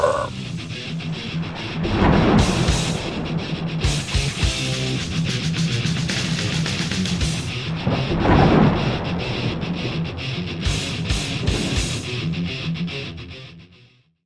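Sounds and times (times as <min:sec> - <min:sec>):
rain-like hiss: 0:00.0 - 0:12.2
thunder rumbling in a storm over a backyard: 0:00.0 - 0:12.4.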